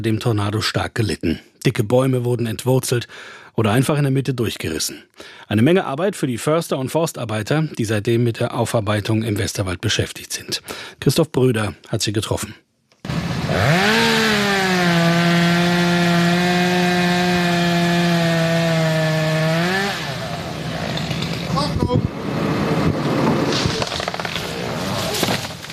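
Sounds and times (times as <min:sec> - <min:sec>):
speech: 0:00.0 - 0:12.7, 0:13.5 - 0:14.2
chainsaw cutting through wood: 0:13.0 - 0:25.7
scattered cracks and knocks: 0:23.2 - 0:25.7.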